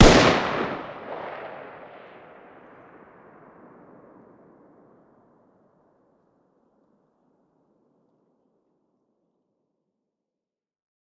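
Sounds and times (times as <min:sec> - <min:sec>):
distant 5.56x45 machine gun fire outdoors: 0:00.0 - 0:01.9.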